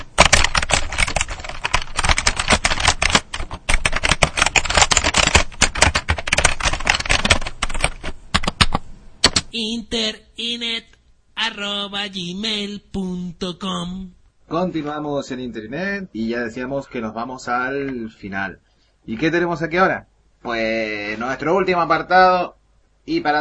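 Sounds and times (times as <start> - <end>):
typing on a keyboard: 0.0 - 9.5
speech: 9.5 - 23.3.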